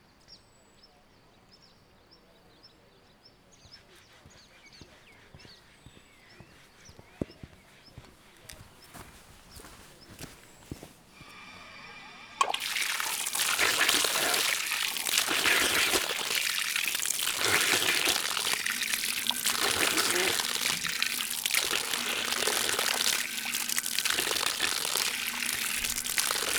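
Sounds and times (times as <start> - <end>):
artesian well water running in Szögliget: 4.2 - 26.5
person washing face with water from an artesian well: 9.2 - 26.5.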